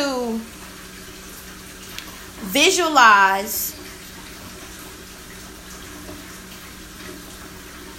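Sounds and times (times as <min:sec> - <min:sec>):
running water pouring over stones and crystals being cleansed: 0:00.0 - 0:07.9
speech: 0:02.5 - 0:03.8.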